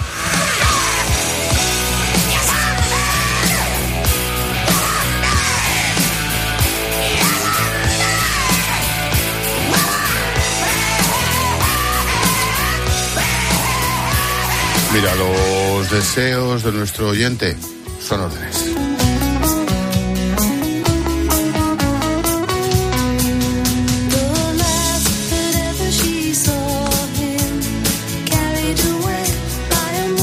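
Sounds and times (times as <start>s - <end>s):
shouted raspy lead vocal: 0.0s - 16.5s
distorted guitars: 0.0s - 30.2s
loud dense hard rock song: 0.0s - 30.2s
speech: 15.0s - 18.4s.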